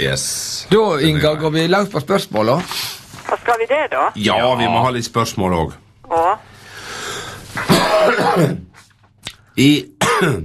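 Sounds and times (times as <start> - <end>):
speech: 0.0 - 6.5, 7.6 - 8.7, 9.6 - 10.4
person coughing harshly: 7.6 - 8.7, 10.0 - 10.4.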